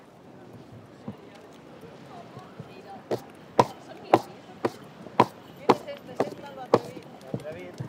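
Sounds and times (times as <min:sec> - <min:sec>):
crowd murmuring at a festival procession: 0:01.9 - 0:07.2
horse hooves clopping on hard pavement during a festival procession: 0:02.4 - 0:07.8.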